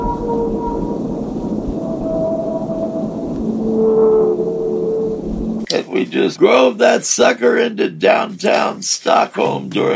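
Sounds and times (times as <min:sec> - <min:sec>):
long tonal whale calls: 0:00.0 - 0:05.7
dense low rumble: 0:00.0 - 0:08.8
speech: 0:06.0 - 0:09.9.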